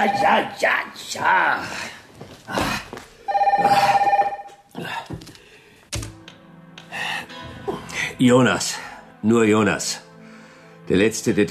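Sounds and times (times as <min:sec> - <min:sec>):
telephone bell ringing: 0:00.0 - 0:00.6, 0:03.3 - 0:04.6
speech: 0:00.0 - 0:02.8, 0:03.6 - 0:04.1, 0:08.2 - 0:10.0, 0:10.9 - 0:11.4.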